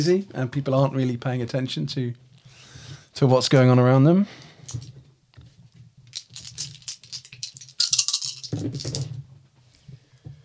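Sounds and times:
speech: 0:00.0 - 0:02.2, 0:03.2 - 0:04.9, 0:08.6 - 0:09.2
dice rolled for a tabletop role-playing game clattering: 0:06.1 - 0:09.1.

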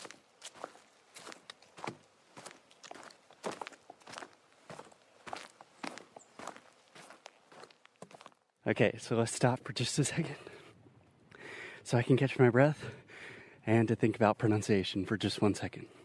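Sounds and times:
footsteps of a group of people walking by: 0:00.0 - 0:08.5
speech: 0:08.7 - 0:10.5, 0:11.9 - 0:13.0, 0:13.6 - 0:16.0.

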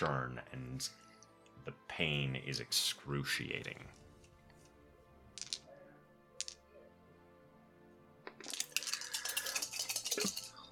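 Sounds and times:
speech: 0:00.0 - 0:04.0
many dice tumbling together during a tabletop role-playing game: 0:05.3 - 0:05.8, 0:06.4 - 0:06.6, 0:08.3 - 0:10.7.

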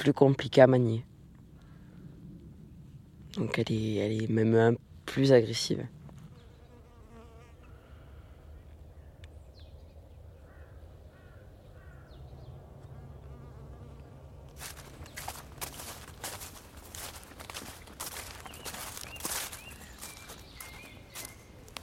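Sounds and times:
speech: 0:00.0 - 0:01.1, 0:03.4 - 0:06.0
crow caws: 0:01.6 - 0:02.0, 0:10.4 - 0:12.2
many honeybees buzzing: 0:06.3 - 0:07.8, 0:12.9 - 0:21.8
crunching footsteps or handling noises: 0:14.4 - 0:21.8.

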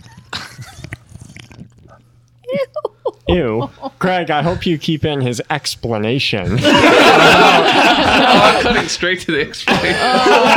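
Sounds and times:
person slurping and sipping a drink: 0:00.0 - 0:02.3
gulp: 0:00.0 - 0:02.4
laughter: 0:02.5 - 0:04.7, 0:06.4 - 0:10.5
speech: 0:03.3 - 0:10.5.

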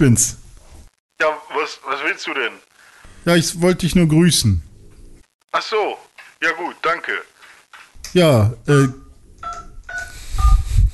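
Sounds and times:
speech: 0:00.0 - 0:00.4, 0:01.2 - 0:04.7, 0:05.5 - 0:07.3, 0:08.1 - 0:09.6
two-tone telephone keypad dialing beeps: 0:09.4 - 0:10.6.

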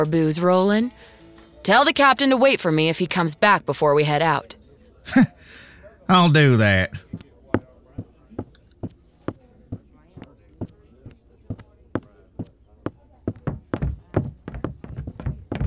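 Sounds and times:
speech: 0:00.0 - 0:07.2
laughter: 0:05.1 - 0:07.0
horse hooves clip-clopping at a walking pace: 0:13.3 - 0:15.6.

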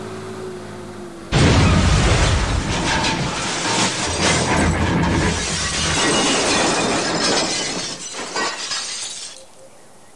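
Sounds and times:
bulldozer exploding: 0:01.3 - 0:09.2
shattering crashing debris: 0:01.3 - 0:09.4.

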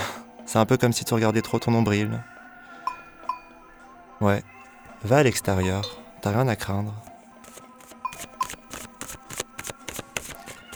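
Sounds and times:
speech: 0:00.5 - 0:02.3, 0:04.2 - 0:07.1
oracle cards shuffling and snapping during a card reading: 0:07.4 - 0:10.7.

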